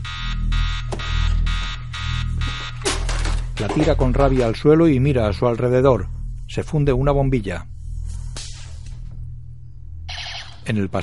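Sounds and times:
timer alarm ringing in electronic bursts: 0.0s - 3.4s, 9.9s - 10.7s
low hum: 0.0s - 11.0s
speech: 3.6s - 7.7s, 10.7s - 11.0s.

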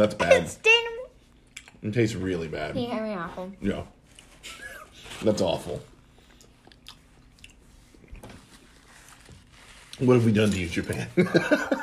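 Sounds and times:
speech: 0.0s - 0.7s, 1.8s - 4.6s, 5.2s - 5.9s, 10.0s - 11.8s
person biting and chewing moist candy-like food: 1.3s - 1.8s, 5.9s - 9.5s.

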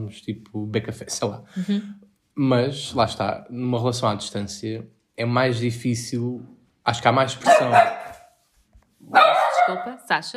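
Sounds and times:
speech: 0.0s - 8.0s, 9.0s - 10.3s
dog barking: 7.4s - 8.3s, 9.0s - 10.0s.

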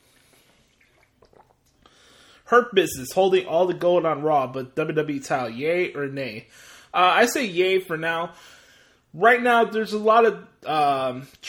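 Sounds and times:
water sloshing in a swig: 0.0s - 1.8s
gulping water: 0.7s - 1.8s
speech: 2.5s - 8.6s, 9.2s - 11.4s.

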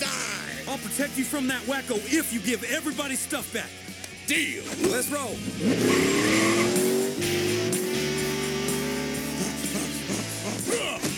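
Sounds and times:
speech: 0.7s - 6.6s
engine roar of a car skidding off the road into a ditch: 4.6s - 11.1s
tire squeal of a car skidding off the road into a ditch: 5.7s - 7.1s.

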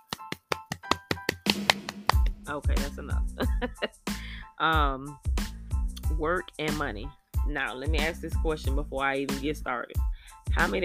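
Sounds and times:
hands clapping: 0.0s - 2.4s
speech: 2.5s - 5.3s, 6.1s - 10.8s.

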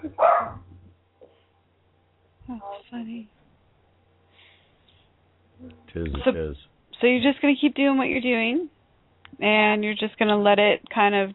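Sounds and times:
small dog barking sharply: 0.2s - 0.6s
speech: 2.5s - 3.4s, 5.6s - 8.8s, 9.4s - 11.3s.

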